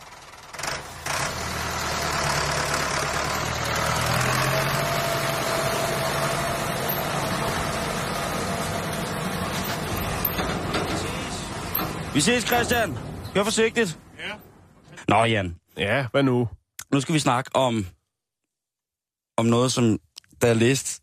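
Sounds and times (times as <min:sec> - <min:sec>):
tractor diesel engine running: 0:00.0 - 0:14.8
speech: 0:12.2 - 0:14.4, 0:15.1 - 0:18.0, 0:19.4 - 0:21.0.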